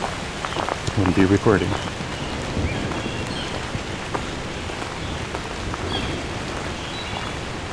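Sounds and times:
faint bird calls: 0:00.0 - 0:07.7
rain pattering on leaves through forest canopy: 0:00.0 - 0:07.7
speech: 0:01.0 - 0:02.0.

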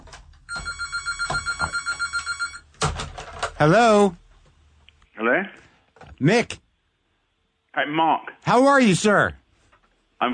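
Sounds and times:
telephone ringing with a bright electronic trill: 0:00.5 - 0:02.7
speech: 0:03.6 - 0:04.2, 0:05.2 - 0:05.6, 0:06.2 - 0:06.6, 0:07.8 - 0:09.4, 0:10.2 - 0:10.3.

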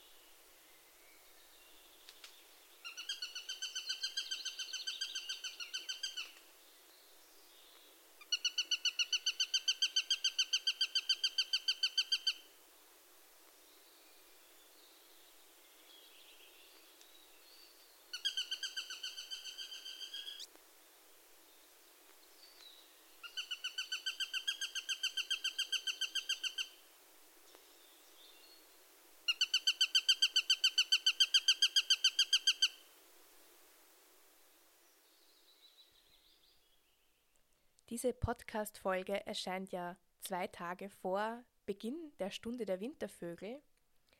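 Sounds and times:
Eurasian sparrowhawk alarm call: 0:02.8 - 0:06.3, 0:08.2 - 0:12.4, 0:18.1 - 0:20.4, 0:23.2 - 0:26.8, 0:29.3 - 0:32.8
speech: 0:37.9 - 0:43.7.

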